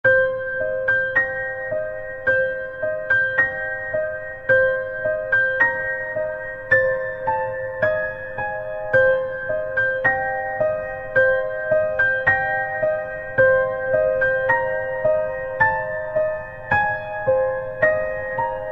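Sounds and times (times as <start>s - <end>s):
creepy piano ringtone: 0.1s - 18.7s.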